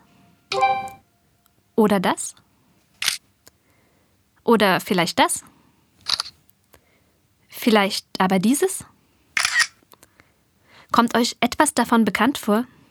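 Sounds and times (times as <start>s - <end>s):
speech: 1.8s - 2.4s, 4.5s - 6.2s, 7.6s - 8.9s, 10.9s - 12.8s
synthetic smartphone camera shutter sound: 3.0s - 3.2s, 6.0s - 6.4s, 9.4s - 9.8s.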